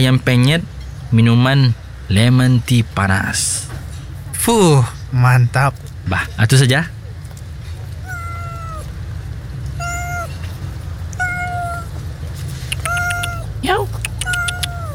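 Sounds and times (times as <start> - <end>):
speech: 0.0 - 7.0
low rumble: 2.9 - 14.9
cat meowing: 8.0 - 8.9, 9.7 - 10.5, 11.1 - 12.0, 12.7 - 14.9.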